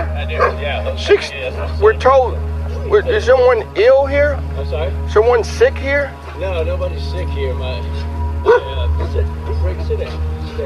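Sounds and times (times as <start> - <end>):
German Shepherd barking and yelping: 0.0 - 0.6, 8.4 - 8.7
steady low hum: 0.0 - 10.6
voices: 0.0 - 10.6
speech: 0.2 - 10.6.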